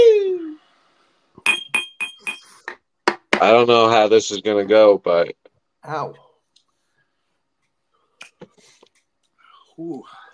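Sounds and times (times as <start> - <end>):
glasses clinking in a toast: 1.4 - 2.7
speech: 3.4 - 6.2, 9.8 - 10.2.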